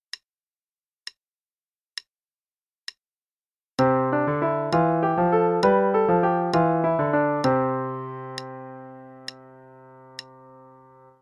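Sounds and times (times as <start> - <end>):
polyrhythms on C: 3.8 - 9.5.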